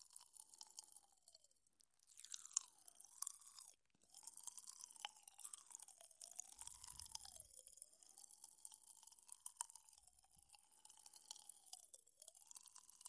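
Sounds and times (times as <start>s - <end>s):
popping candy crackling: 2.0s - 13.0s.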